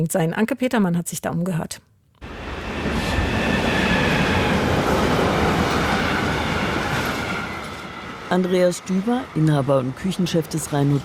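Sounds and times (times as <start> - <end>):
speech: 0.0 - 1.9, 8.3 - 11.0
freight train passing on the railway line on the left bank of the Rhine: 2.2 - 11.0
high squealing of freight train wagons on the rails: 2.6 - 8.3.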